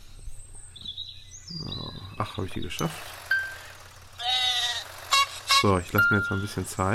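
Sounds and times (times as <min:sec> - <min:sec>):
speech: 0:02.2 - 0:03.2, 0:05.6 - 0:06.9
sheep bleating in a mobile game: 0:04.2 - 0:05.3.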